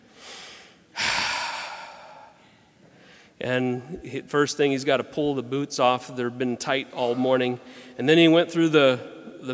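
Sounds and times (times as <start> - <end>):
person imitating angry heavy breathing: 0.0 - 3.4
speech: 3.4 - 9.5.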